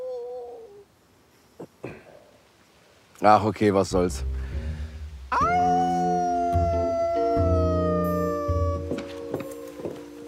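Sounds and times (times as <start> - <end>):
speech: 3.2 - 4.4
wolves howling: 5.4 - 10.0.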